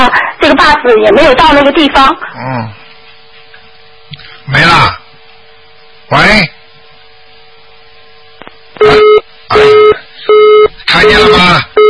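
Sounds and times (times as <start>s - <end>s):
speech: 0.8s - 2.8s, 4.5s - 5.0s, 6.1s - 6.6s, 8.8s - 11.7s
telephone busy signal: 8.8s - 11.8s.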